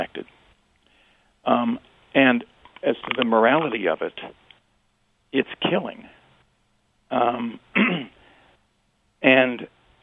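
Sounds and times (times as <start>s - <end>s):
speech: 1.5s - 4.4s, 5.3s - 6.2s, 7.1s - 8.2s, 9.2s - 9.8s
man coughing: 7.2s - 8.2s.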